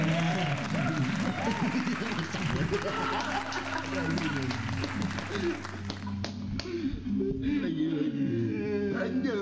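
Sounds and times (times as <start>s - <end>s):
crowd applause: 0.0s - 6.3s
laughter: 0.0s - 9.3s
speech: 1.6s - 5.8s.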